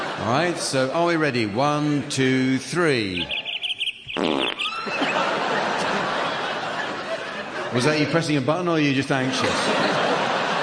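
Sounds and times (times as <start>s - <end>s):
laughter: 0.0s - 3.6s, 4.5s - 10.6s
speech: 0.2s - 3.4s, 4.2s - 5.1s, 7.7s - 10.0s
buzzy fart sound effect trailing into a hissing rasp: 4.1s - 4.8s.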